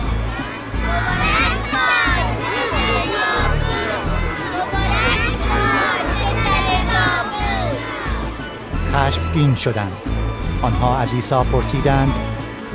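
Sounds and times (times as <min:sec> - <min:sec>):
large crowd of children shouting and cheering in a temple: 0:00.0 - 0:08.7
speech: 0:09.0 - 0:12.3.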